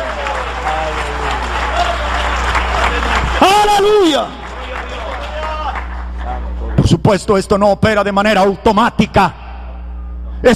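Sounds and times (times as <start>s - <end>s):
audience applause: 0.0s - 6.8s
low hum: 0.0s - 10.5s
speech: 7.1s - 9.4s.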